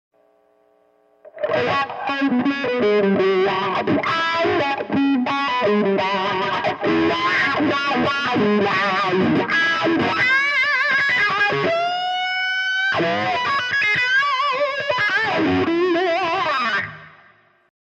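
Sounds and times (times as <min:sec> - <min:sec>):
electric guitar with wah effect: 0:01.3 - 0:17.4.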